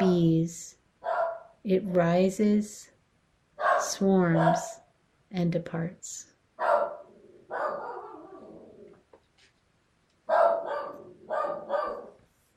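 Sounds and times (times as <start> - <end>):
speech: 0.5 - 2.9, 3.8 - 6.7
dog barking in another room: 1.0 - 1.6, 3.6 - 4.8, 6.6 - 8.6, 10.3 - 12.2.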